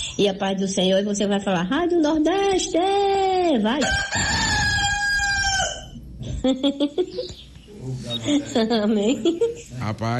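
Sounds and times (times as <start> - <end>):
speech: 0.2 - 4.7, 6.4 - 10.1
rooster crowing: 3.8 - 6.0.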